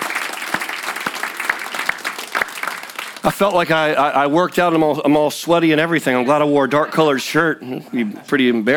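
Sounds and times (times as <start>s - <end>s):
audience applauding a worship team: 0.0s - 4.3s
speech: 3.3s - 8.7s.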